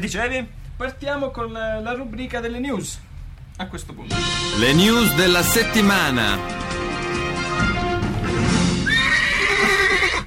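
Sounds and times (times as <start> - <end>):
speech: 0.0 - 6.8
horse neighing: 8.0 - 10.2.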